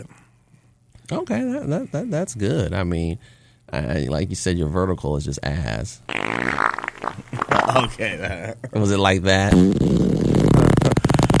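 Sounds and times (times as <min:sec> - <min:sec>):
speech: 0:01.1 - 0:06.3, 0:07.7 - 0:10.1
person imitating a long fart with a sputtering raspberry: 0:06.1 - 0:08.2, 0:09.5 - 0:11.3
laughter: 0:07.3 - 0:08.8.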